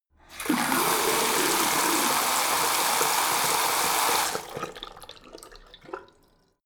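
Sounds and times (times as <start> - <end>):
tap water flowing hard in a house bathroom: 0.2 - 6.3.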